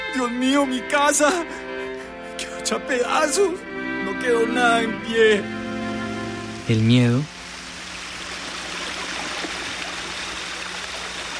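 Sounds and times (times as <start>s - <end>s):
speech: 0.2s - 1.7s, 2.6s - 5.6s, 6.7s - 7.4s
water rushing into a house: 3.2s - 11.3s.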